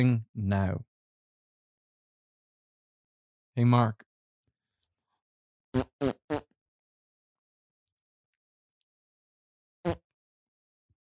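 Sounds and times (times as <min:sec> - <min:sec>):
speech: 0:00.0 - 0:00.9, 0:03.6 - 0:04.0, 0:05.7 - 0:06.5
fart noises: 0:05.8 - 0:06.5.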